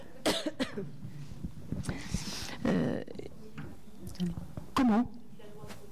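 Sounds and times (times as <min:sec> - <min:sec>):
person coughing: 0:00.2 - 0:00.9
speech: 0:00.5 - 0:01.0, 0:04.2 - 0:05.2.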